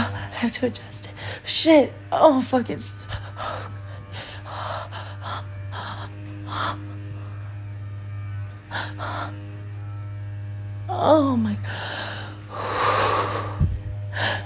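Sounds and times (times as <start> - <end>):
steady low electrical hum: 0.0 - 14.4
speech: 0.4 - 3.1, 11.0 - 11.8
heavy deep breathing with airy gasps and exhalations: 3.0 - 9.7, 11.6 - 14.4.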